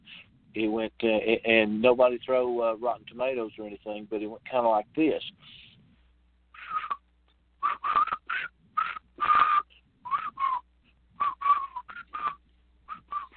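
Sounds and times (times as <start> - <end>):
speech: 0.6 - 5.6
person whistling a brisk march tune: 6.6 - 7.0, 7.6 - 10.6, 11.2 - 13.3.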